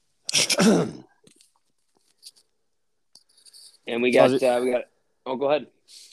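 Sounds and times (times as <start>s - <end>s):
harsh cough: 0.3s - 1.2s
speech: 0.6s - 1.0s, 3.9s - 6.1s.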